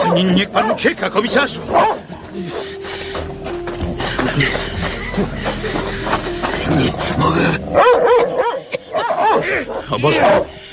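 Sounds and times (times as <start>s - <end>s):
speech: 0.1s - 2.9s, 4.4s - 5.8s, 6.7s - 10.7s
scuffling: 1.6s - 7.7s
large dog snarling, growling and barking while attacking a man: 6.6s - 10.4s.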